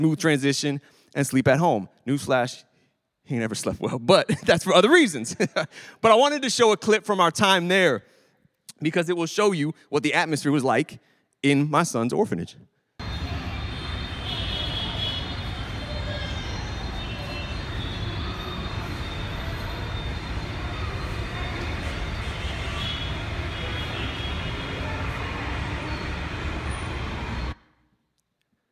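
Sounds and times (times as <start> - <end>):
speech: 0.0 - 8.1, 8.8 - 12.7
car horns honking in city traffic: 13.0 - 27.1
dense traffic off a main thoroughfare in Pune, India: 13.0 - 27.6.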